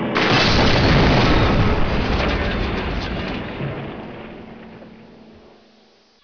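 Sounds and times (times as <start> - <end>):
fly-by crash: 0.1 - 4.8.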